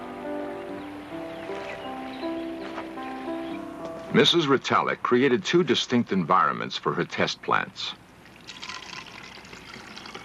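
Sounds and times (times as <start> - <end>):
speech: 4.1 - 8.0
water pouring in a steady stream: 8.2 - 10.2.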